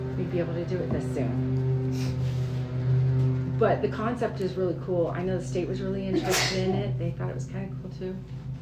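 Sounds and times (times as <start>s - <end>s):
speech: 0.2s - 2.4s, 3.6s - 8.4s
person sneezing: 6.2s - 6.6s.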